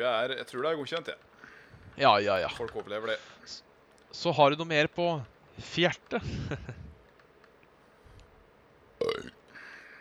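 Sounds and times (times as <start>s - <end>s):
speech: 0.0s - 6.8s
deep throaty burp: 9.0s - 9.4s.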